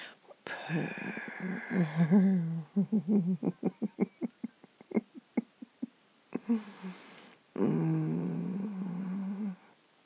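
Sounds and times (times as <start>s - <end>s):
human voice imitating a cat's purr: 0.6s - 4.2s, 6.4s - 7.0s, 7.6s - 9.7s.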